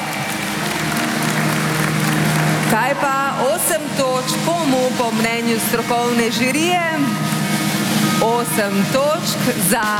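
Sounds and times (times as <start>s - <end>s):
audience applause during jury point announcements at a song contest: 0.0s - 4.7s
speech: 2.9s - 7.3s, 8.2s - 9.9s.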